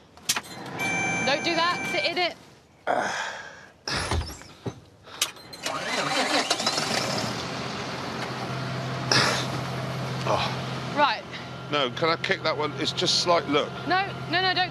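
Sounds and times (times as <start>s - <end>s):
speech: 1.4s - 4.0s, 10.3s - 14.6s
engine cranking and idling: 5.1s - 14.6s.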